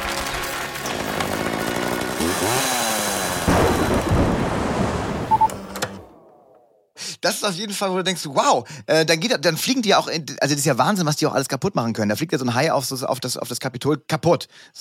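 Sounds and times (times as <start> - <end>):
chainsaw engine revving and roaring: 0.2 - 5.1
thunder: 3.5 - 5.4
speech: 7.3 - 14.7.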